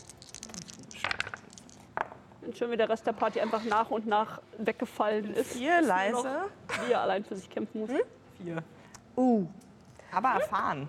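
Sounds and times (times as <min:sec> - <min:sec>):
dice rolled in a game clattering across a hard surface: 0:00.0 - 0:02.2
speech: 0:02.5 - 0:10.8.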